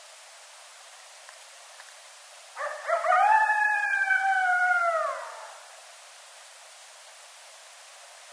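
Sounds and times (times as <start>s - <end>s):
coyote howl: 2.6s - 5.7s.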